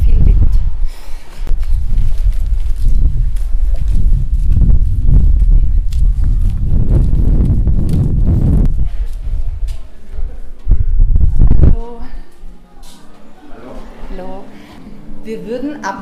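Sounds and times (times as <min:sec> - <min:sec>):
heavy wind buffeting the microphone outdoors: 0:00.0 - 0:12.2
faint footsteps: 0:00.0 - 0:15.2.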